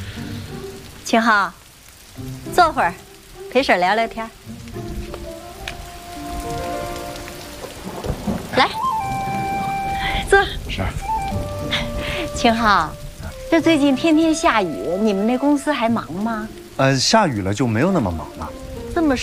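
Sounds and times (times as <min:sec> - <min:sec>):
steady rain hissing: 0:00.0 - 0:19.2.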